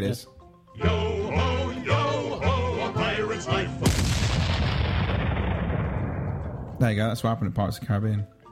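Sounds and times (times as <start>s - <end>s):
speech: 0.0s - 1.4s, 6.8s - 8.4s
music: 0.0s - 8.4s
fireworks booming and crackling: 3.8s - 6.8s.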